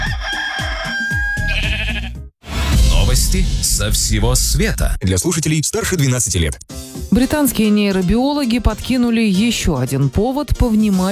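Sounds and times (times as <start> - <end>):
rooster crowing: 0.0 - 2.0
ram bleating in loud wavering cries: 1.3 - 2.2
speech: 3.3 - 11.1.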